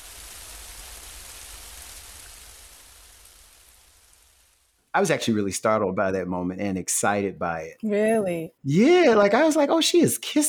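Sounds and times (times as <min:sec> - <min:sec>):
steady rain pouring down: 0:00.0 - 0:05.7
speech: 0:05.0 - 0:10.4.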